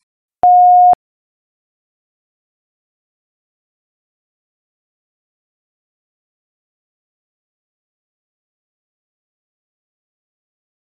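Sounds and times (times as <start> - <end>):
answering machine electronic beep: 0.4 - 1.0.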